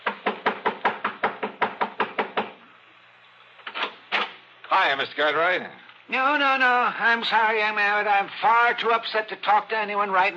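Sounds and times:
fist pounding on the front door of a home in Lakewood: 0.0s - 2.6s
speech: 4.8s - 10.3s.

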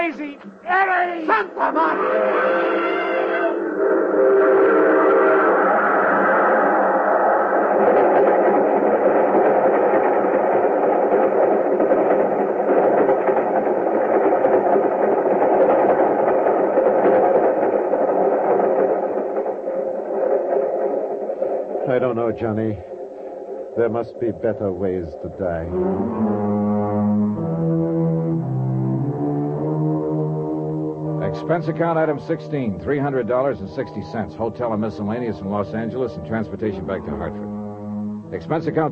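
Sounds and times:
speech: 0.1s - 3.0s, 22.0s - 22.9s, 23.8s - 26.7s, 31.5s - 37.5s, 38.3s - 38.9s
laughter: 1.2s - 2.9s
freight train roaring past with clatter and rumble: 1.6s - 38.9s
freight train whistle: 1.8s - 6.9s, 25.7s - 30.1s, 31.2s - 38.9s.

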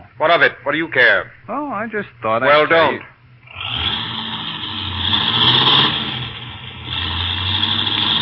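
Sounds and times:
speech: 0.2s - 3.9s
car with faulty brakes revving and pulling away: 3.4s - 8.2s.

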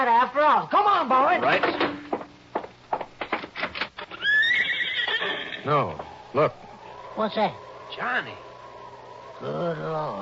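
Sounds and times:
speech: 0.0s - 1.9s, 5.6s - 6.6s, 7.2s - 8.5s, 9.4s - 10.2s
horse whinnying with a long quavering neigh: 4.1s - 6.0s.

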